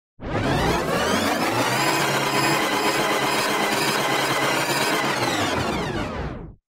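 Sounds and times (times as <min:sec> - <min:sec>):
long tape rewind: 0:00.2 - 0:06.5.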